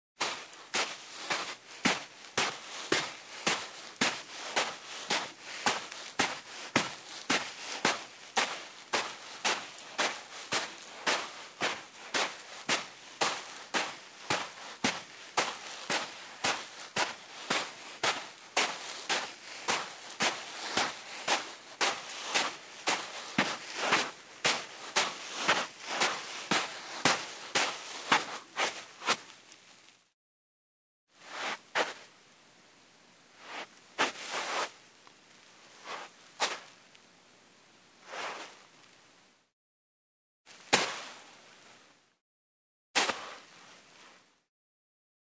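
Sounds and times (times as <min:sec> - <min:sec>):
footsteps in shoes on dry sand: 0:00.2 - 0:29.9, 0:31.2 - 0:32.1, 0:33.4 - 0:34.8, 0:35.8 - 0:36.8, 0:38.1 - 0:38.6, 0:40.5 - 0:41.4, 0:43.0 - 0:43.5.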